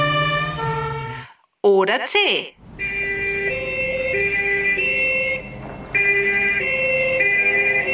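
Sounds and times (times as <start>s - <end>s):
emergency vehicle siren: 0.0s - 1.3s, 2.6s - 7.9s
speech: 1.6s - 2.6s.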